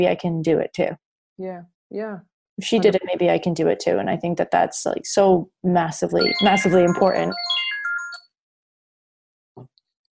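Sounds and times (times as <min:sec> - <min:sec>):
speech: 0:00.0 - 0:07.7
phone ringtone of bright electronic tones: 0:06.2 - 0:08.3.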